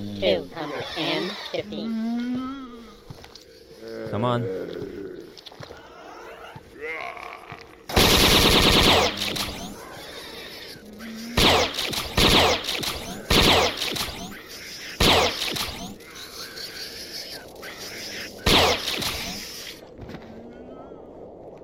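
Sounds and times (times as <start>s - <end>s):
quieter video game noise: 0.0s - 21.6s
speech: 0.2s - 2.6s, 3.9s - 5.0s
automatic bolt gun firing in a video game: 7.9s - 9.4s, 11.4s - 14.1s.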